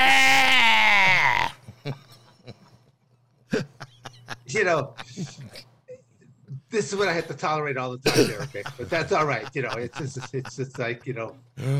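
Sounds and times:
person imitating a loud strained scream: 0.0 - 1.6
laughter: 1.6 - 2.8, 3.5 - 5.6, 8.2 - 11.3
speech: 1.8 - 2.1, 4.5 - 5.5, 6.7 - 11.7.

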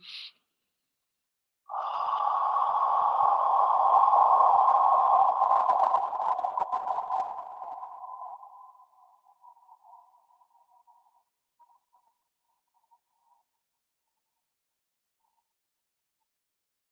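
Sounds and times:
long slow water breath breathing: 1.7 - 8.2.

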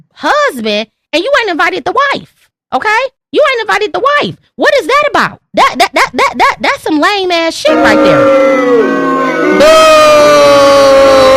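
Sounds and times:
speech: 0.2 - 10.2
person booing with long jeering tone: 7.7 - 11.3.

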